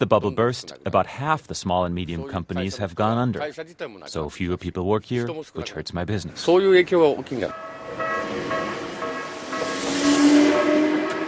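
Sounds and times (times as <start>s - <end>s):
speech: 0.0s - 8.8s
metallic whining tones of a commuter train: 7.3s - 11.2s
commuter train heading into Tokyo, Japan, rumbling on rails: 7.5s - 11.2s.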